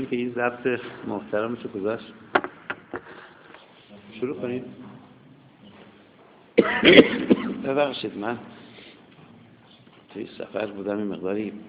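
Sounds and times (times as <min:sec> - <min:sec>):
speech: 0:00.0 - 0:02.3, 0:04.2 - 0:04.8, 0:06.6 - 0:08.6, 0:10.1 - 0:11.6
hoarse cough from a person feeling unwell: 0:06.6 - 0:07.7.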